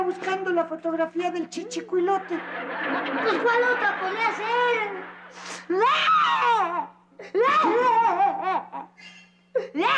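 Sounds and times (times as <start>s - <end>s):
speech: 0.1s - 9.9s
laughter: 2.0s - 5.4s
young child crying: 5.7s - 8.9s.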